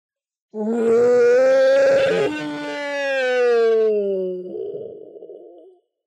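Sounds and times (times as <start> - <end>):
huge creature's wrathful monstrous roar in a cavern: 0.6 - 5.0.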